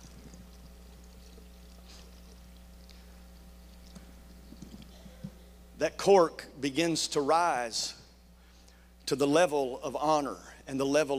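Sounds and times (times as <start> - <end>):
liquid pouring into a container: 0.0 - 4.9
low hum: 0.0 - 10.7
speech: 5.8 - 8.0, 9.1 - 11.1.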